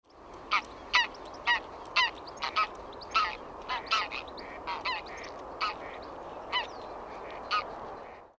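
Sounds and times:
greylag goose: 0:00.5 - 0:06.7, 0:07.4 - 0:07.7.

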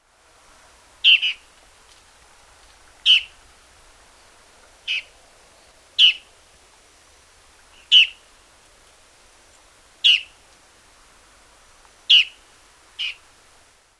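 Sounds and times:
long-tailed triller calling: 0:01.0 - 0:01.5, 0:03.0 - 0:03.4, 0:04.1 - 0:06.3, 0:07.7 - 0:08.3, 0:10.0 - 0:10.4, 0:12.1 - 0:12.4, 0:13.0 - 0:13.2.

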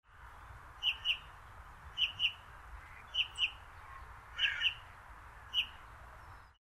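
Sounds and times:
soft quiet calls of two female and one male bullfinch on a disused railway line: 0:00.8 - 0:01.3, 0:02.0 - 0:04.9.

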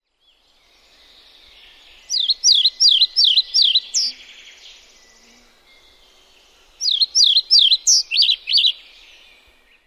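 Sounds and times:
pied flycatcher: 0:01.8 - 0:09.7.

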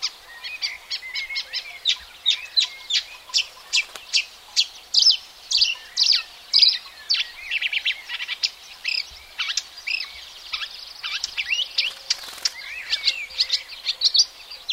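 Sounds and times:
marsh warbler delivering hurried scratchy phrases: 0:00.0 - 0:14.7.

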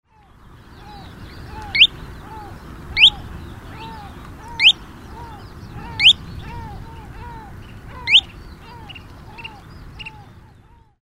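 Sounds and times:
Kentish plover calling: 0:00.6 - 0:11.0.

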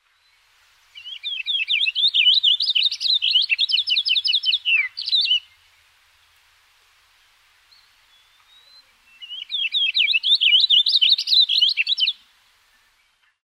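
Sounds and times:
house finch singing: 0:01.0 - 0:05.6, 0:07.7 - 0:12.2.

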